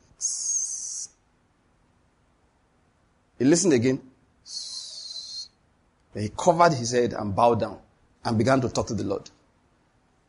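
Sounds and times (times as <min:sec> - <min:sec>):
human voice imitating a gentle high whistle: 0:00.2 - 0:01.1, 0:04.5 - 0:05.6
speech: 0:03.4 - 0:04.1, 0:06.2 - 0:09.4.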